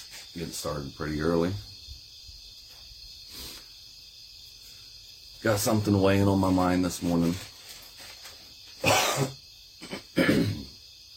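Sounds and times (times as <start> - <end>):
speech: 0.4 - 1.7, 5.4 - 7.5, 9.2 - 9.4
person clearing throat: 8.8 - 10.8.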